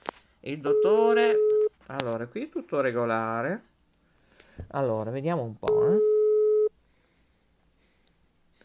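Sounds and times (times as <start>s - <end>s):
speech: 0.4s - 3.7s, 4.6s - 6.1s
electronic telephone busy tone on an unanswered call: 0.7s - 1.7s, 5.7s - 6.7s.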